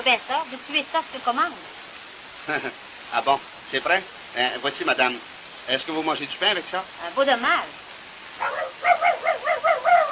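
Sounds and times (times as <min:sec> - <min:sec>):
speech: 0:00.0 - 0:01.8, 0:02.4 - 0:07.8
small dog barking in high-pitched yaps: 0:08.4 - 0:10.1.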